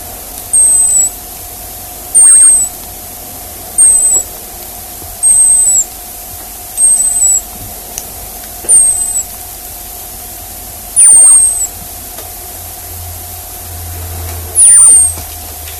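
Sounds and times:
hazel dormouse squeaky whistles: 0.0s - 1.3s, 2.1s - 3.0s, 3.7s - 6.1s, 6.7s - 7.7s, 8.6s - 9.4s, 10.9s - 11.8s, 14.6s - 15.3s
steady hum: 0.0s - 15.7s.

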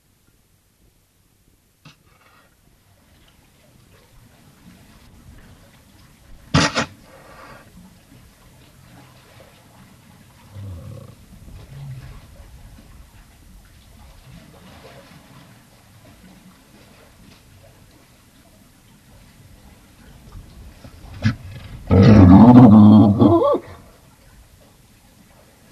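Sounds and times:
Galapagos fur seal grunting and barking: 6.5s - 7.6s, 21.2s - 23.8s.

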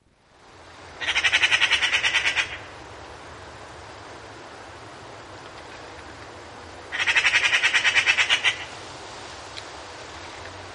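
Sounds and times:
Eurasian magpie uttering dry rattling chatters: 1.0s - 2.7s, 6.9s - 8.7s.

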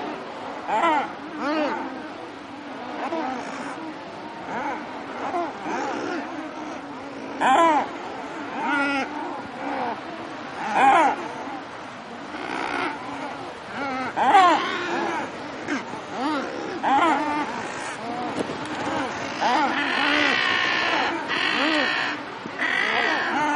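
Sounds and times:
Thick-billed murres uttering groaning, rolling calls: 0.0s - 23.5s.

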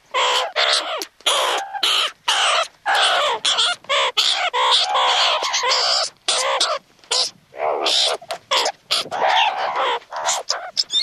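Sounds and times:
meerkat squawks: 0.1s - 11.0s.

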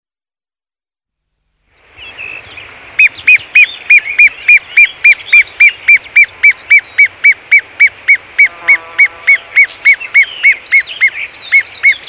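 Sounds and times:
great gerbil sharp chirping calls: 2.0s - 8.5s, 9.3s - 12.0s.

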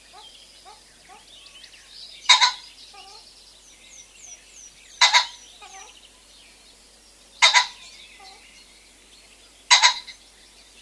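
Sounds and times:
Common pheasant grating two-note crow: 0.0s - 1.3s, 2.2s - 3.3s, 5.0s - 6.0s, 7.4s - 8.5s, 9.6s - 10.2s.

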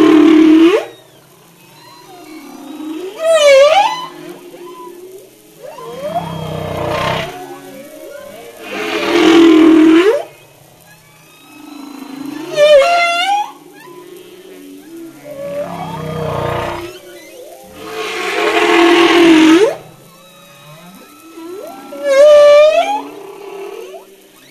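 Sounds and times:
humpback whale song: 0.0s - 24.4s.

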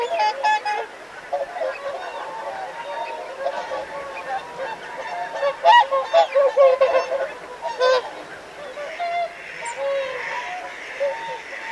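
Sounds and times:
whooper swan trumpeting honks: 0.0s - 11.7s.

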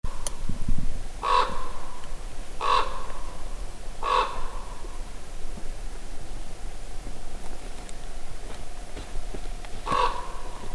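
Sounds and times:
steady background hiss: 0.1s - 10.7s
common raven cawing: 1.2s - 2.0s, 2.6s - 5.1s, 9.7s - 10.7s.

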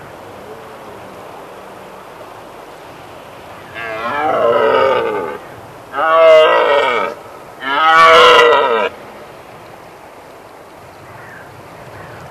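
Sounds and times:
red deer roaring: 3.7s - 9.0s.

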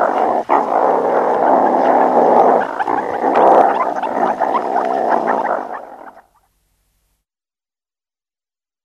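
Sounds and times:
meerkat gravelly rasping growl: 0.0s - 6.2s.

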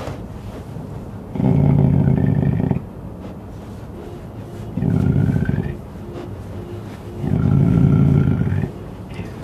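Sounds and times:
cougar making low gravelly rumbling bursts: 1.3s - 2.9s, 4.7s - 5.8s, 7.2s - 9.4s.

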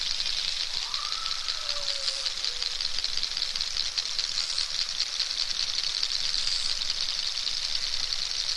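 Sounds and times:
narwhal buzzing series of clicks: 0.0s - 8.5s.

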